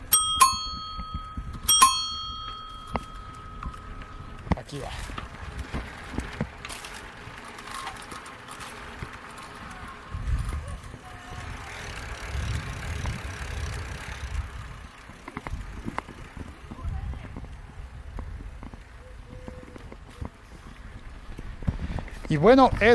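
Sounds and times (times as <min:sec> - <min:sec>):
bell struck and ringing: 0:00.0 - 0:04.5
outdoor noise: 0:00.0 - 0:22.9
speech: 0:04.7 - 0:05.2, 0:22.4 - 0:22.9.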